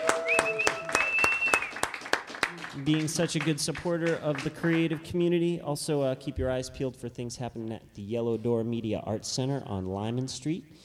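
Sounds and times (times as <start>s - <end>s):
audience applause: 0.0s - 4.9s
sustained whistle-like tone: 0.1s - 1.8s
speech: 2.8s - 10.8s.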